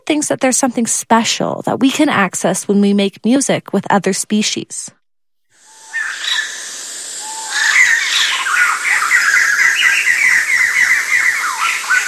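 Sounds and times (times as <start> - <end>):
speech: 0.1 - 5.0
bird calls in a musical duet: 5.6 - 12.0.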